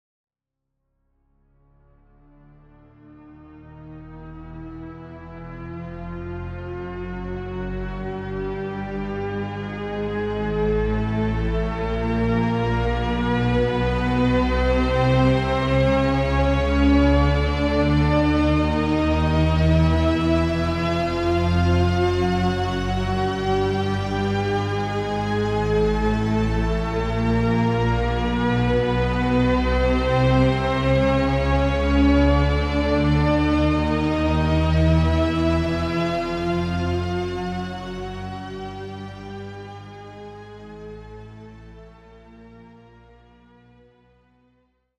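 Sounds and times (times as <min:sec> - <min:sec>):
string ensemble Shepard tone: 0:07.7 - 0:41.8.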